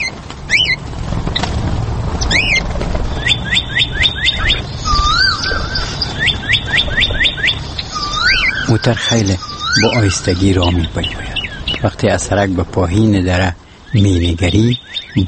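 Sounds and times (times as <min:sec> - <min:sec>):
songbirds singing: 0:00.0 - 0:15.2
steady low rumble of noise: 0:00.0 - 0:15.2
speech: 0:08.8 - 0:15.2.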